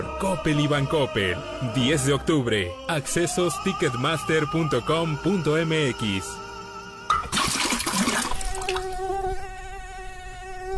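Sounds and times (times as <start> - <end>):
speech: 0.2 - 6.4
rushing watery noise: 7.2 - 8.9
mosquito buzzing: 8.2 - 10.7.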